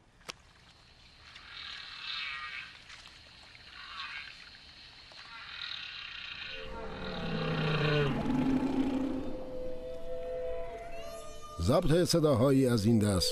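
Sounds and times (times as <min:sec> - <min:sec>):
hissy underwater ocean background in the Pacific Ocean: 0:00.0 - 0:13.3
humpback whale song recorded underwater in the Pacific Ocean near Hawaii: 0:06.4 - 0:13.3
speech: 0:11.7 - 0:13.3.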